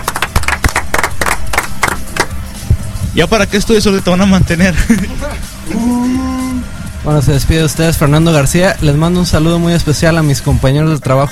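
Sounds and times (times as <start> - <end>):
applause: 0.0 - 2.4
speech: 3.2 - 6.2, 7.0 - 11.3.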